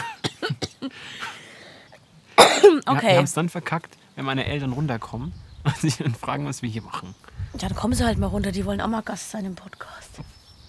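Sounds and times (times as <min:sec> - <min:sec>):
short harsh coughs: 0:00.0 - 0:01.5, 0:02.4 - 0:03.3
speech: 0:02.9 - 0:10.2.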